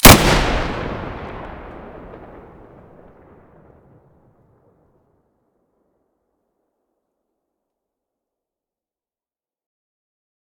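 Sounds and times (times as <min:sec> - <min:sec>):
SV98 muzzle blast: 0:00.0 - 0:02.7.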